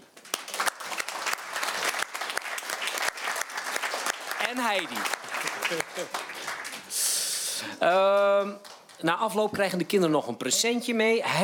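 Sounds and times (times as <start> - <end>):
audience in a hall clapping: 0.0 - 9.0
speech: 4.5 - 6.4, 7.6 - 11.4.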